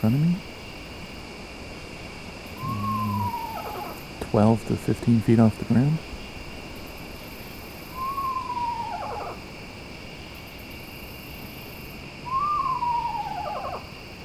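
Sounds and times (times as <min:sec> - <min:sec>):
speech: 0:00.0 - 0:00.5, 0:04.3 - 0:06.1
steady hum of night insects: 0:00.0 - 0:14.2
screech owl giving descending whinny-like calls: 0:02.6 - 0:04.1, 0:07.3 - 0:09.6, 0:12.2 - 0:14.2.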